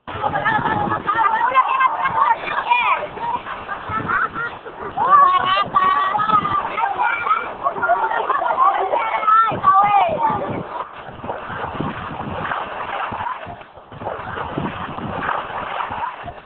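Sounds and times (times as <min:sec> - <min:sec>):
children chattering and shouting outdoors while playing: 0:00.0 - 0:10.8
water splashing: 0:00.0 - 0:16.4
laughter: 0:00.1 - 0:12.1, 0:12.7 - 0:13.6, 0:15.2 - 0:16.4.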